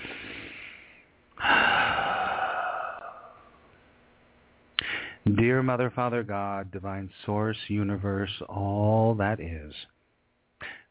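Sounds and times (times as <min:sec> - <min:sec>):
deep breath taken before a group prayer: 0:00.0 - 0:03.8, 0:04.8 - 0:05.2, 0:10.6 - 0:10.9
speech: 0:05.4 - 0:09.9.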